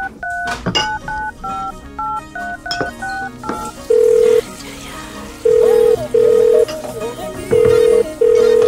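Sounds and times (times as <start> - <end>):
phone keypad touch-tones dialing a number: 0.0 - 4.4, 5.5 - 6.7, 7.5 - 8.6
steady phone ringback beeps: 0.0 - 4.4, 5.4 - 6.7, 7.5 - 8.6
dense noise: 0.0 - 8.6.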